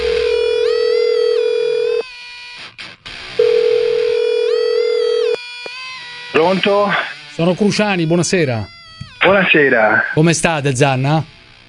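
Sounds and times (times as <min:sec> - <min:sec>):
telephone dial tone on an outgoing call as a number is dialed: 0:00.0 - 0:02.0, 0:03.4 - 0:05.4
speech: 0:06.5 - 0:11.3.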